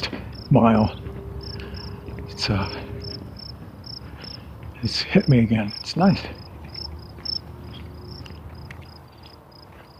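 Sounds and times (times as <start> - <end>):
speech: 0.0 - 1.0, 2.4 - 2.8, 4.8 - 6.4
low rumble of wind: 0.0 - 9.2
insects, likely crickets, chirping in high-pitched trills: 0.0 - 9.9.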